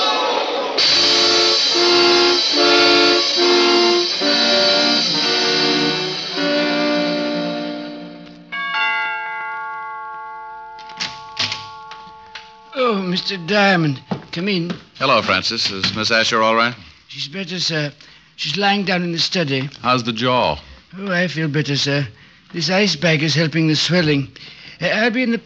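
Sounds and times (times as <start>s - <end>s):
subway train roaring: 0.0s - 8.5s
shrill subway train whistle blasts: 0.8s - 8.3s
sharp metal clanks: 10.7s - 16.1s
speech: 13.2s - 25.4s.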